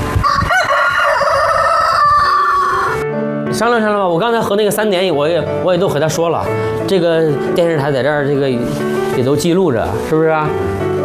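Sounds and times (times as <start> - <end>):
rooster crowing: 0.2 - 3.0
speech: 3.6 - 11.0.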